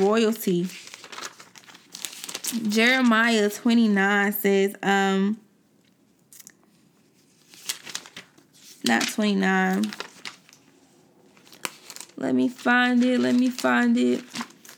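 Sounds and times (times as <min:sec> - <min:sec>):
speech: 0:00.0 - 0:00.9, 0:02.5 - 0:05.4, 0:08.8 - 0:10.0, 0:12.2 - 0:14.4
pages of a physical paper Bible turning: 0:00.0 - 0:03.5, 0:07.2 - 0:14.7.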